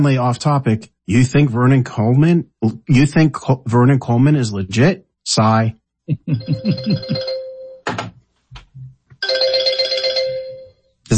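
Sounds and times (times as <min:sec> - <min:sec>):
speech: 0:00.0 - 0:07.3
laughter: 0:06.1 - 0:07.4
telephone ringing with an electronic trill: 0:06.4 - 0:07.9, 0:09.2 - 0:10.9.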